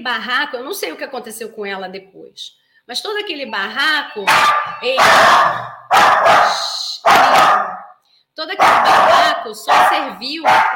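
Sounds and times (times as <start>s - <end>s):
speech: 0.0s - 7.8s, 8.4s - 10.7s
dog barking: 4.3s - 8.0s, 8.6s - 10.7s.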